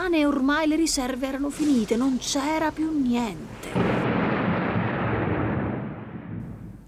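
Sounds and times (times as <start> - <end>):
speech: 0.0 - 4.1
loud deep rumble of thunder: 2.4 - 6.8.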